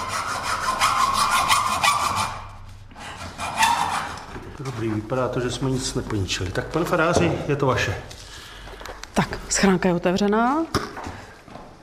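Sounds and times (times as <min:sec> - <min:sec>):
hand saw cutting open a sealed wooden box: 0:00.0 - 0:04.3
speech: 0:04.7 - 0:08.2, 0:09.6 - 0:10.8.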